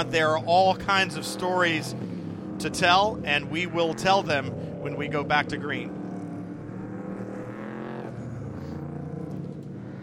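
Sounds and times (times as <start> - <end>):
speech: 0.0 - 6.0
Acura NSX safety car engine roaring while driving past: 0.0 - 10.0.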